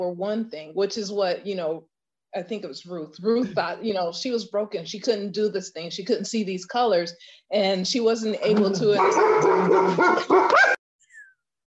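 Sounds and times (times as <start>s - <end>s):
speech: 0.0s - 10.8s
dogs barking and yelping: 8.8s - 10.8s.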